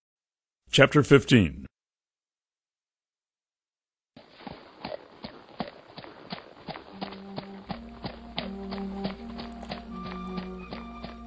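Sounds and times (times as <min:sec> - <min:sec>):
speech: 0:00.7 - 0:01.7
horses' hooves clip-clopping at a steady walk: 0:04.2 - 0:11.2
soft sustained musical tones: 0:07.0 - 0:11.2.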